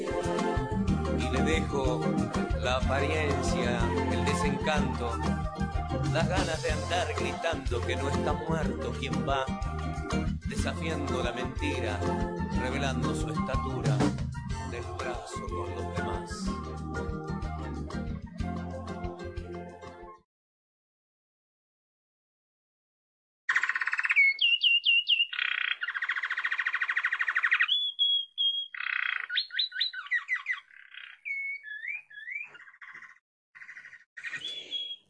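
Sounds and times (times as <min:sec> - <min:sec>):
music: 0:00.0 - 0:20.3
speech: 0:01.4 - 0:09.7, 0:10.6 - 0:14.1, 0:14.8 - 0:17.2
saffron finch singing: 0:23.5 - 0:35.0.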